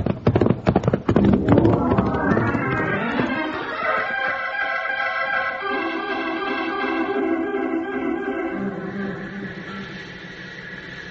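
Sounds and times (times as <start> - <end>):
horse hooves clopping as horses ride off: 0.0 - 4.1
sustained music: 1.2 - 10.8.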